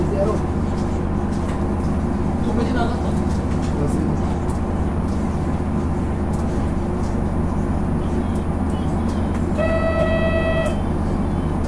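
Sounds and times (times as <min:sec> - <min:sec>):
diesel railcar engine rumble heard from inside the carriage: 0:00.0 - 0:11.6.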